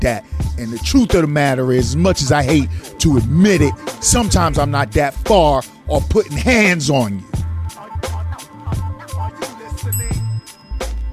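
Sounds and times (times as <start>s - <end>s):
speech: 0.0s - 7.3s
steady thumping music beat with heavy bass hits: 0.0s - 11.1s
bright bell ringing: 9.9s - 11.1s.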